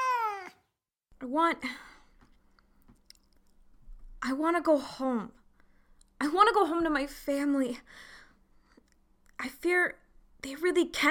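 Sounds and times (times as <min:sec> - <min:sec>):
cat meowing: 0:00.0 - 0:00.6
speech: 0:01.2 - 0:01.9, 0:04.2 - 0:05.4, 0:06.2 - 0:08.1, 0:09.4 - 0:11.0.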